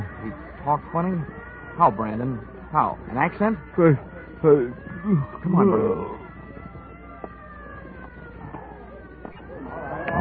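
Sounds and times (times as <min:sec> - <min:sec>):
approaching ambulance siren wailing: 0:00.0 - 0:10.2
dense street noise: 0:00.0 - 0:10.2
speech: 0:00.2 - 0:06.2.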